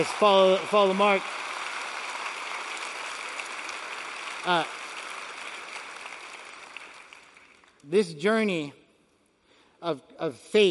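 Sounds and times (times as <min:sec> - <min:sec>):
speech: 0:00.0 - 0:01.4, 0:04.4 - 0:04.8, 0:07.9 - 0:08.8, 0:09.8 - 0:10.6
audience applause: 0:00.0 - 0:07.8.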